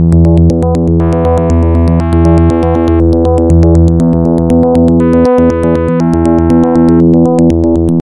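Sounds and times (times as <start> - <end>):
DX7 algorithm 10 synthesizer sequence: 0.0 - 8.0.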